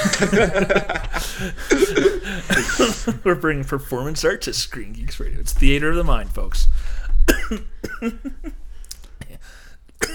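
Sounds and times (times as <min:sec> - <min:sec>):
laughter: 0:00.0 - 0:03.4, 0:07.5 - 0:08.6
speech: 0:00.2 - 0:08.6
person coughing harshly: 0:01.7 - 0:03.2, 0:07.3 - 0:08.4, 0:10.0 - 0:10.1.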